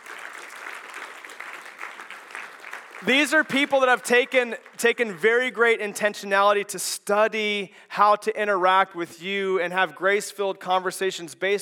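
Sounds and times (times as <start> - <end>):
audience applause at a gathering: 0.0 - 5.1
speech: 3.0 - 11.6.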